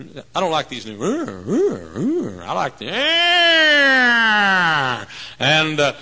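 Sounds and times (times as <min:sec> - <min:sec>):
speech: 0:00.0 - 0:06.0
person imitating a police car siren wail: 0:01.1 - 0:05.1.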